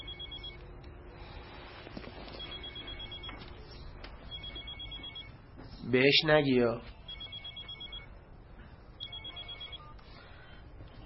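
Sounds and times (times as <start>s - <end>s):
telephone ringing: 0.0s - 0.6s, 2.4s - 3.5s, 4.3s - 5.4s, 7.0s - 8.2s, 9.0s - 10.0s
speech: 5.9s - 6.9s.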